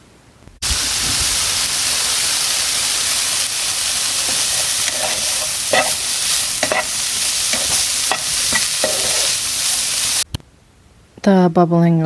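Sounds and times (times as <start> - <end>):
food crackling and sizzling in a frying pan: 0.6 - 10.3
speech: 11.4 - 12.0.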